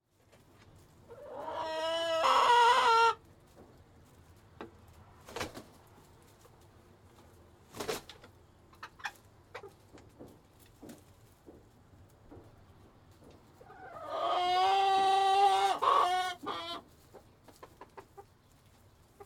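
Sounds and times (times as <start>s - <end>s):
chicken squawking: 1.1s - 3.2s, 13.6s - 16.9s.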